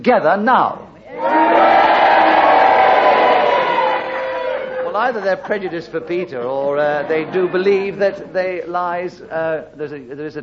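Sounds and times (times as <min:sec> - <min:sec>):
speech: 0:00.0 - 0:01.4, 0:05.0 - 0:10.4
large studio audience cheering and booing: 0:01.1 - 0:05.7
laughter: 0:02.9 - 0:08.2.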